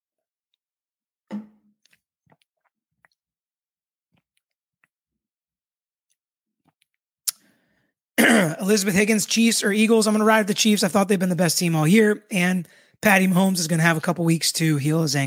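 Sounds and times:
soft slurp: 1.8 - 3.2
person gulping: 1.8 - 3.3, 6.6 - 8.7
person sipping a drink: 1.8 - 3.3, 4.2 - 5.0
small wet mouth clicks: 1.8 - 3.3, 4.2 - 5.0, 6.1 - 7.6
speech: 8.6 - 15.2.

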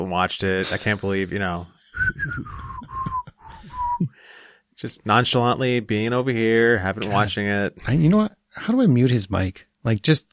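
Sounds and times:
speech: 0.1 - 2.6, 4.8 - 10.3
person whistling a song: 1.9 - 4.2.

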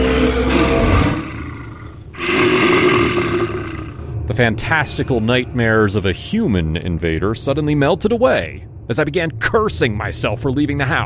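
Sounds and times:
grizzly bear roaring: 0.0 - 4.2
speech: 4.4 - 11.0.

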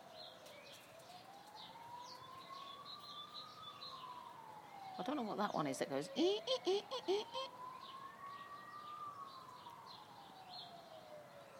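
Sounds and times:
emergency siren wailing: 0.0 - 11.5
speech: 5.0 - 7.6.

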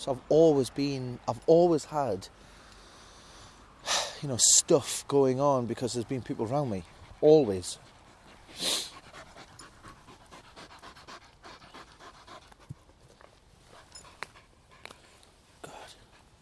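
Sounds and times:
speech: 0.0 - 2.5, 3.8 - 7.9, 8.5 - 8.8
faint outdoor background: 0.0 - 16.4
dog panting after chasing a thrown ball: 5.6 - 16.4.

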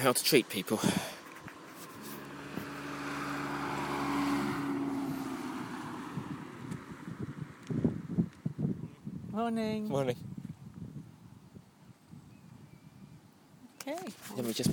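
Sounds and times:
speech: 0.0 - 1.2, 9.4 - 10.3, 14.4 - 14.7
car engine hum passing along a lane: 0.1 - 8.8
wind rushing over the microphone: 2.4 - 13.4, 14.1 - 14.7.

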